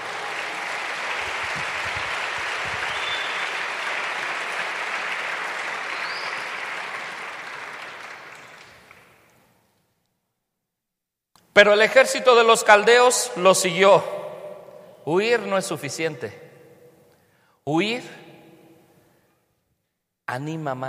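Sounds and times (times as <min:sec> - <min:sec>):
crowd applauding: 0:00.0 - 0:09.5
speech: 0:11.6 - 0:14.2, 0:15.1 - 0:16.4, 0:17.7 - 0:18.2, 0:20.3 - 0:20.8.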